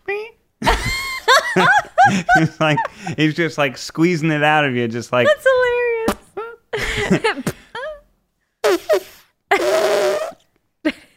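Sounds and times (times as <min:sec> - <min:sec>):
laughter: 0:00.6 - 0:03.2, 0:06.8 - 0:08.0
speech: 0:01.6 - 0:05.7, 0:07.1 - 0:07.5
short vocal burst: 0:08.6 - 0:10.4
voice making a buzzing raspberry imitating a fart: 0:08.6 - 0:10.4.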